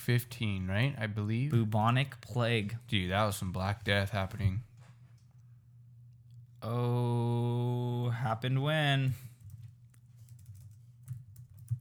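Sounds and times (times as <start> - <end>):
speech: 0.1 - 4.7, 6.6 - 9.3
typing on a computer keyboard: 9.4 - 11.7.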